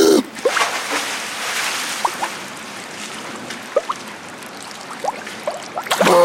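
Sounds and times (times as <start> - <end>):
water splashing as someone dives into rainwater: 0.3 - 6.2
water bubbling: 1.9 - 2.9, 3.6 - 6.2.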